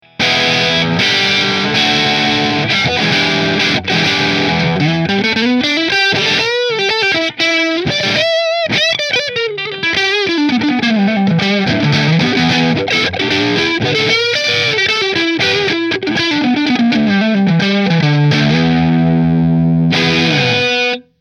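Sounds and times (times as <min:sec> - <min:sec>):
guitar with Nola JB14 neck pickup through a Marshall amplifier: 0:00.0 - 0:21.1.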